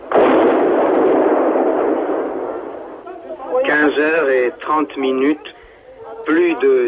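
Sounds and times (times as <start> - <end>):
explosions shaking the walls of a building under construction: 0.0 - 3.6
speech: 4.7 - 5.6, 6.3 - 6.8.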